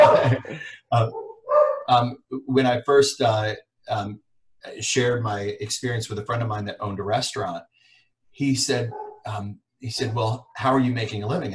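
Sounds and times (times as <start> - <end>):
laughter: 0.0 - 1.1
speech: 0.2 - 1.2, 1.9 - 7.7, 8.4 - 11.5
dog yipping and yelping excitedly: 1.1 - 1.9, 8.9 - 9.3.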